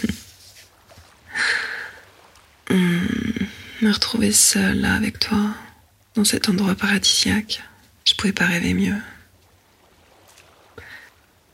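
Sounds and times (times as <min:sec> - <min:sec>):
brief brighter wave splash: 0:00.0 - 0:03.8, 0:09.4 - 0:11.5
soft low waves washing along a deserted beach shore: 0:00.0 - 0:11.5
speech: 0:03.8 - 0:05.6, 0:06.2 - 0:09.1.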